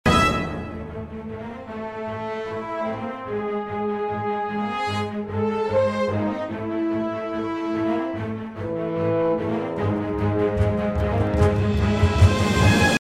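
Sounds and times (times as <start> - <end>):
music mix without reverb: 0.1 - 13.0.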